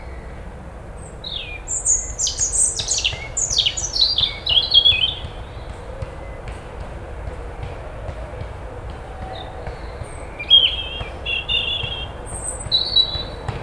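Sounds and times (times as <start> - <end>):
European robin Erithacus rubecula song: 0.0 - 6.4, 8.7 - 13.6.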